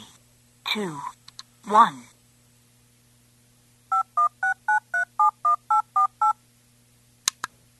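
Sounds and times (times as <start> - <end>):
speech: 0.7 - 2.2
DTMF touch-tone dialing beeps: 3.9 - 6.4.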